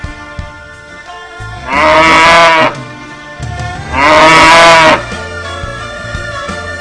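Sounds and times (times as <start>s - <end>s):
cow mooing with long low bellows: 1.6s - 2.8s, 3.9s - 5.1s.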